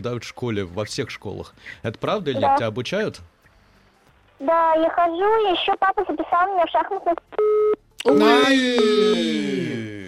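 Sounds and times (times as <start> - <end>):
speech: 0.0 - 3.3, 4.4 - 10.0
telephone busy tone after call dropped: 7.4 - 9.2.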